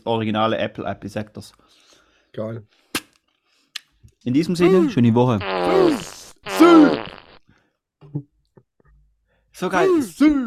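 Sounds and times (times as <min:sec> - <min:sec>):
speech: 0:00.0 - 0:02.8, 0:04.2 - 0:07.2, 0:09.6 - 0:10.4
loud buzzy fart sound effect: 0:04.7 - 0:07.4.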